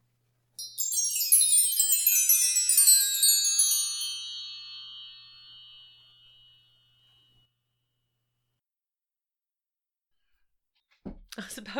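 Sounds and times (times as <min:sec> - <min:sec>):
wind chimes ringing: 0:00.6 - 0:07.4
speech: 0:11.4 - 0:11.7.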